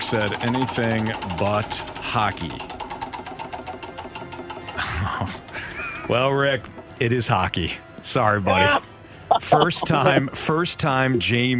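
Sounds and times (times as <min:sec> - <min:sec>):
spinning prize wheel ticking: 0:00.0 - 0:06.7
speech: 0:00.1 - 0:02.8, 0:06.1 - 0:08.9, 0:09.5 - 0:11.5
laughter: 0:04.7 - 0:06.4, 0:08.5 - 0:11.5.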